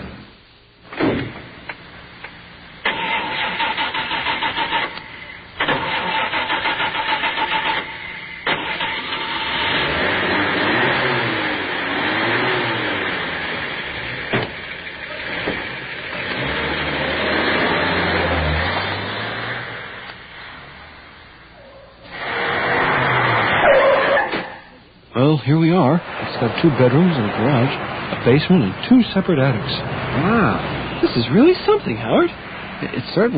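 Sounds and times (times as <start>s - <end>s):
car engine starting and running: 0.9s - 24.5s, 25.5s - 33.3s
car door slamming shut: 14.3s - 14.6s
speech: 25.5s - 33.3s.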